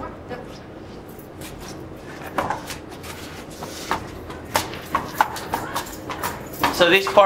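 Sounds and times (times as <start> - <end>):
hooves of a lame horse trotting on a hard surface: 2.3 - 7.2.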